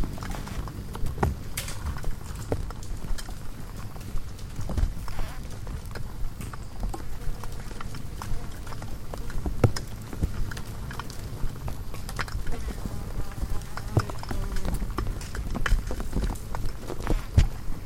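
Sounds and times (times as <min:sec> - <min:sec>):
insects ticking and tapping against a hanging porch bulb at night: 0:00.2 - 0:17.7.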